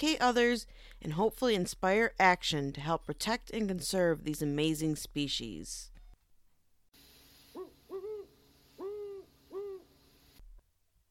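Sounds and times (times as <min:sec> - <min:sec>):
speech: 0:00.0 - 0:05.9
steady hiss: 0:06.9 - 0:11.0
owl hooting: 0:07.3 - 0:10.4.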